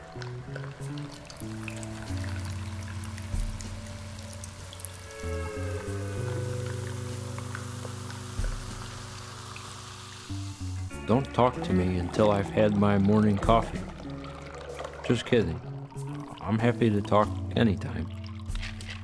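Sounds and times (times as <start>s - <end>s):
liquid pouring from a large container into a small one: 0.0s - 19.0s
speech: 0.2s - 1.8s, 11.1s - 13.9s, 15.1s - 15.7s, 16.5s - 18.1s
soft sustained tones: 4.1s - 10.8s.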